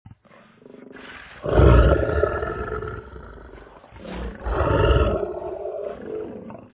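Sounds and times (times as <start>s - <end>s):
lions: 0.1s - 6.7s.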